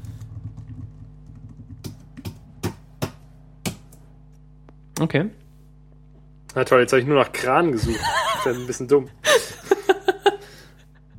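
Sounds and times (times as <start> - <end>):
low steady hum: 0.0 - 11.1
loud typing on a computer keyboard: 0.1 - 2.0
speech: 5.0 - 5.4, 6.6 - 9.6
laughter: 7.8 - 11.1.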